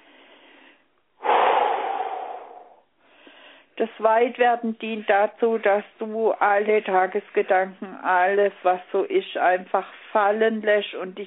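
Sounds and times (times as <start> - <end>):
person breathing during a relaxation exercise: 0.0 - 3.8
speech: 3.8 - 11.2.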